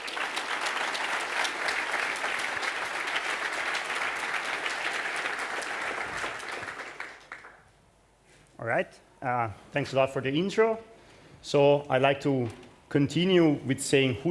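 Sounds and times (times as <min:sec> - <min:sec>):
large audience applause at a security talk: 0:00.0 - 0:07.6
speech: 0:08.6 - 0:14.3.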